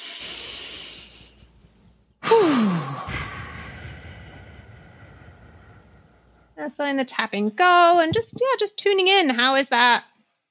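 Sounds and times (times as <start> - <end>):
deep breath during a calming body-awareness exercise: 0.0 - 6.6
speech: 6.6 - 10.1.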